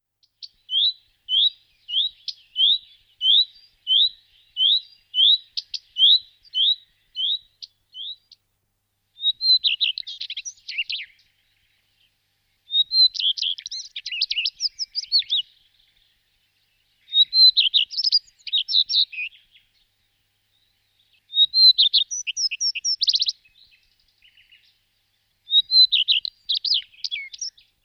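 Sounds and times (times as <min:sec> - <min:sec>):
common redstart Phoenicurus phoenicurus calling: 0:00.4 - 0:08.4, 0:09.2 - 0:11.5, 0:12.7 - 0:16.1, 0:17.0 - 0:19.6, 0:21.3 - 0:24.7, 0:25.4 - 0:27.8.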